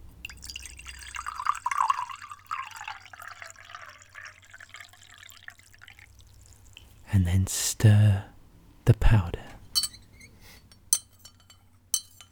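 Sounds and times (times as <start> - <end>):
liquid pouring into a cup: 0.2 - 7.0
speech: 7.1 - 9.4.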